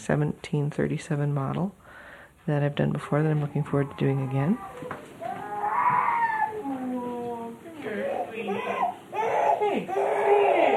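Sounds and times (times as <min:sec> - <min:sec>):
speech: 0:00.0 - 0:01.8, 0:02.4 - 0:05.1
baby crying and wailing after waking from nap: 0:03.6 - 0:07.3, 0:07.9 - 0:10.7.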